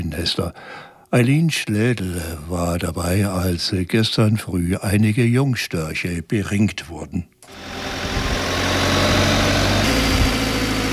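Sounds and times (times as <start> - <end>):
speech: 0.2 - 7.9
aerial lift truck engine running as the lift carries a worker up to a stork nest: 7.5 - 10.9.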